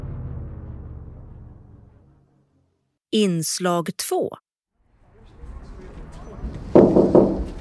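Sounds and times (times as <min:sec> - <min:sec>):
speech: 0:03.1 - 0:04.5
heavy knocks on a large copper door of a parliament building: 0:06.8 - 0:07.5.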